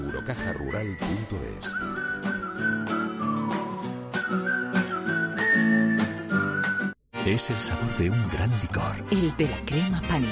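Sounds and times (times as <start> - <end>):
person whistling a bright melody: 0.0 - 7.0
speech: 0.2 - 3.0, 7.3 - 10.3.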